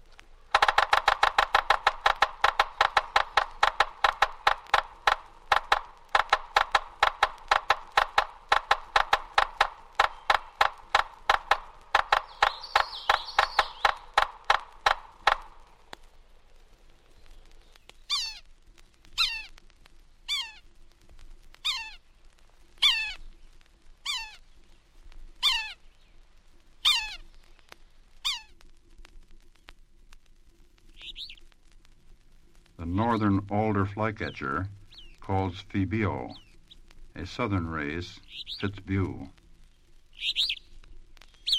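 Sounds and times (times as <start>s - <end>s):
yellow-bellied sapsucker drumming on wood: 0.4s - 15.9s, 32.8s - 39.4s
yellow-bellied sapsucker harsh nasal mewing call note: 0.5s - 15.5s, 18.1s - 18.5s, 19.2s - 19.6s, 20.3s - 20.6s, 21.6s - 22.0s, 22.8s - 23.3s, 24.0s - 24.5s, 25.4s - 25.8s, 26.8s - 27.3s, 28.2s - 28.6s, 32.8s - 39.3s, 40.2s - 40.7s
speech: 32.9s - 36.4s, 37.2s - 39.4s.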